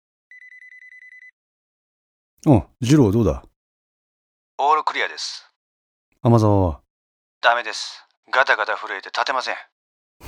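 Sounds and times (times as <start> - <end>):
phone ringing with trilling electronic pulse: 0.3 - 1.4
speech: 2.4 - 3.5, 4.6 - 5.5, 6.2 - 6.8, 7.4 - 10.2.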